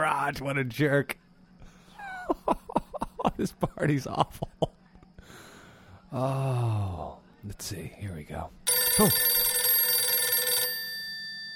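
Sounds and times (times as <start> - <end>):
speech: 0.0 - 1.2, 3.4 - 4.7, 6.1 - 9.5
telephone bell ringing: 8.7 - 11.5.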